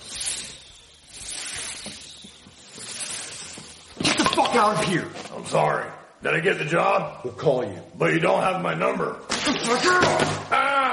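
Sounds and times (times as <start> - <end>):
person imitating a snake's hiss: 0.0 - 3.8
speech: 4.4 - 10.6.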